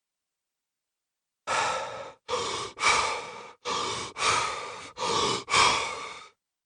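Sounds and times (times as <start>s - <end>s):
deep forceful power breathing: 1.5s - 6.4s.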